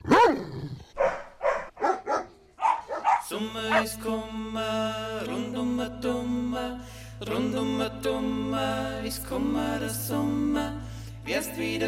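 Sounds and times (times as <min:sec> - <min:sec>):
dog barking sharply: 0:00.0 - 0:00.4, 0:01.0 - 0:03.9
dog letting out a long wavering yelp: 0:01.0 - 0:03.8
speech: 0:03.4 - 0:11.8.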